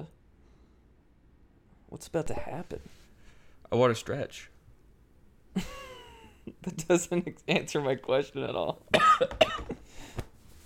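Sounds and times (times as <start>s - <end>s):
speech: 1.9s - 3.0s, 3.7s - 4.5s, 5.6s - 5.8s, 6.6s - 9.6s
cough into a microphone: 8.9s - 9.8s.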